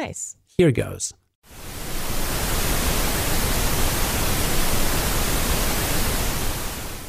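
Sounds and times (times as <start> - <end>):
speech: 0.0 - 1.7
steady full-band pink noise hiss: 1.5 - 7.0.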